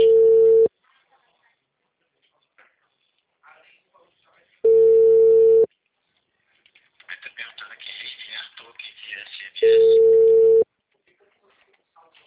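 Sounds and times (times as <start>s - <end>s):
telephone line tones while placing a call: 0.0s - 0.7s, 4.7s - 5.7s, 9.6s - 10.6s
small noises: 0.0s - 12.2s.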